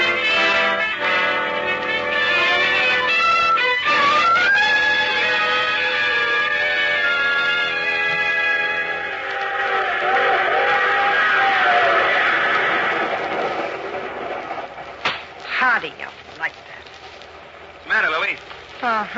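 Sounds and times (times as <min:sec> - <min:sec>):
train rolling along the rails: 0:00.0 - 0:19.1.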